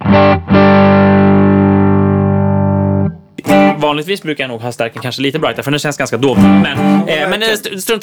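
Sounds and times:
heavily distorted electric guitar chord through neck pickup: 0:00.0 - 0:03.8, 0:06.4 - 0:07.1
speech: 0:03.9 - 0:08.0.

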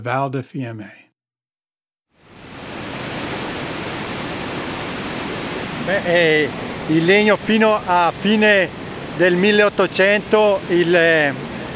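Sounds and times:
speech: 0:00.0 - 0:01.1, 0:05.8 - 0:11.7
waterfall rushing beneath a narrow bridge in the Val di Fiemme: 0:02.2 - 0:11.7.

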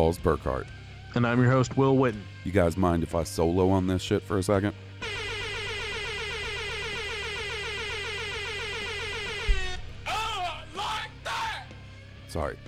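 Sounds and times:
speech: 0:00.0 - 0:05.2, 0:12.4 - 0:12.6
air horn blasts: 0:05.0 - 0:10.7.

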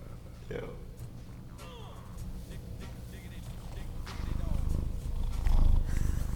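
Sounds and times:
cat purring against the microphone: 0:01.7 - 0:06.3.

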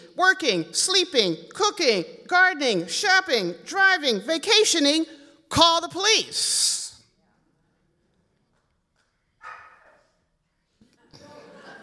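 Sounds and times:
faint noise: 0:00.0 - 0:11.8
speech: 0:00.2 - 0:06.8
dog barking: 0:09.4 - 0:10.2
laughter: 0:10.9 - 0:11.8.

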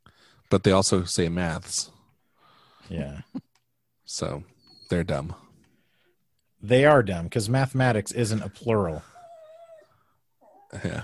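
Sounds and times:
speech: 0:00.5 - 0:02.0, 0:02.9 - 0:03.4, 0:04.1 - 0:05.4, 0:06.6 - 0:09.1, 0:10.7 - 0:11.0
dog whining: 0:04.5 - 0:05.0, 0:09.0 - 0:11.0.

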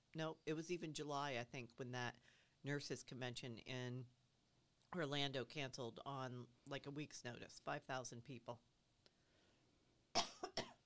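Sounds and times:
speech: 0:00.1 - 0:04.2, 0:04.9 - 0:08.7
raspy coughs: 0:10.2 - 0:10.8.

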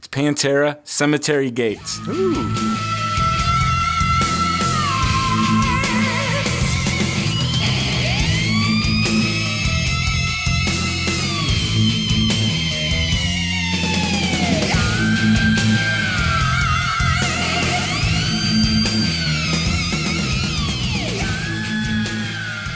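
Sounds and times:
speech: 0:00.1 - 0:02.9
high piercing heavy metal vocal scream: 0:01.8 - 0:09.2, 0:14.7 - 0:20.3, 0:21.0 - 0:22.7
wailing lead guitar bends: 0:01.8 - 0:22.7
pounding heavy metal drum and bass backing: 0:02.0 - 0:22.7.

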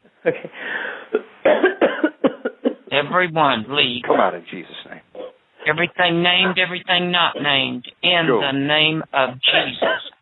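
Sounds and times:
speech: 0:00.2 - 0:01.6, 0:03.1 - 0:04.7, 0:05.6 - 0:10.0
harsh forceful deep coughs: 0:01.2 - 0:02.9, 0:09.5 - 0:10.1.

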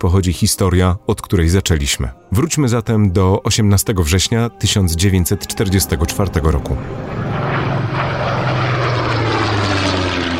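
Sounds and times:
speech: 0:00.0 - 0:07.5
American propeller airplanes droning overhead above the Tatra Mountains: 0:03.7 - 0:10.3.

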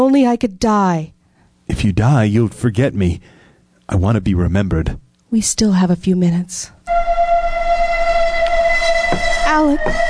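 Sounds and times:
speech: 0:00.0 - 0:07.0, 0:09.1 - 0:10.0
train arriving at a station platform with high-pitched whistle: 0:06.9 - 0:10.0.

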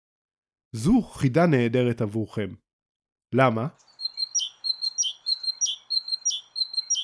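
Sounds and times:
speech: 0:00.7 - 0:02.6, 0:03.3 - 0:03.9
bird chirping in high-pitched tweets: 0:03.7 - 0:07.0.

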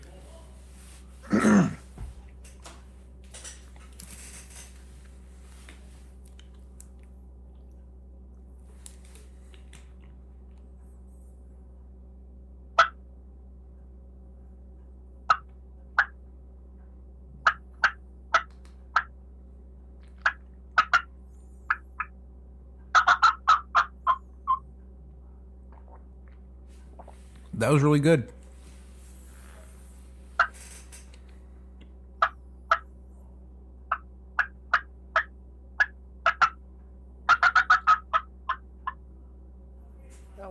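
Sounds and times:
faint steady hum: 0:00.0 - 0:40.4
old wild turkey hen cackle call: 0:12.8 - 0:13.0, 0:15.3 - 0:16.2, 0:17.4 - 0:19.2, 0:20.2 - 0:22.2, 0:22.8 - 0:24.6, 0:30.4 - 0:30.6, 0:32.2 - 0:32.9, 0:33.8 - 0:36.6, 0:37.2 - 0:39.0
speech: 0:27.6 - 0:28.4.

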